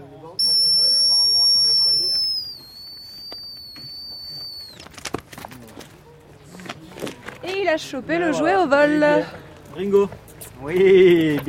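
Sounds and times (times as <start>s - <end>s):
handler's dog whistle blast recalling a dog: 0.4s - 4.8s
speech: 7.7s - 11.4s.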